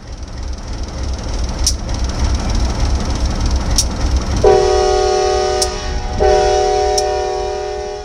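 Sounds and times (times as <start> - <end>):
train rumbling into station with sharp metallic clicks: 0.0 - 8.0
train horn blaring: 4.4 - 8.0.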